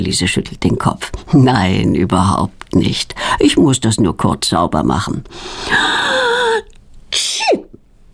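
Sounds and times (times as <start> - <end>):
speech: 0.0 - 6.2
girl sneezing: 6.4 - 7.8.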